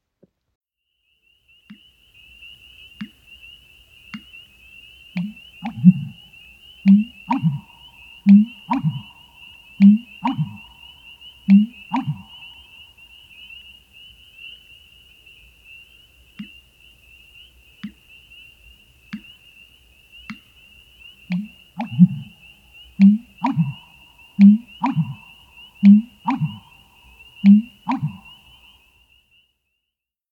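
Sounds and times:
male marsh bird giving deep breeding-season calls in dense reeds: 4.1 - 13.7, 20.2 - 28.8.

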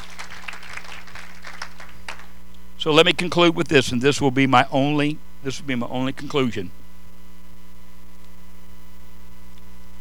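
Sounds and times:
audience applauding: 0.0 - 2.4
faint electrical hum: 0.0 - 9.9
speech: 2.8 - 6.8.

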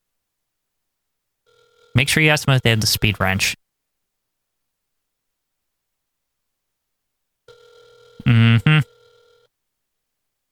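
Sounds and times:
telephone bell ringing with a bright metallic trill: 1.5 - 2.7, 7.5 - 9.5
speech: 2.0 - 3.6.

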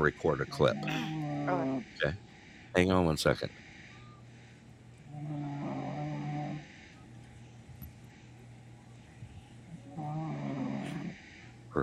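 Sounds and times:
speech: 0.0 - 3.6
steady low hum: 0.0 - 11.8
Rhode Island Red chicken snoring: 0.6 - 2.2, 5.1 - 6.7, 9.8 - 11.2.

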